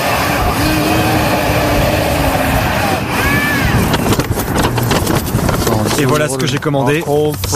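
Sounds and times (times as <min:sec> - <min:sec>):
delivery drone flying with loud steady motor whine: 0:00.0 - 0:05.2
constant rushing noise: 0:00.0 - 0:06.1
speech: 0:06.0 - 0:07.5.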